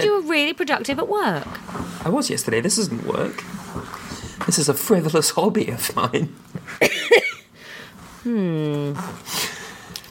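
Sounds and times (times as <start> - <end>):
speech: 0.5 - 7.2, 8.2 - 9.4
sharp coughs: 6.8 - 7.4.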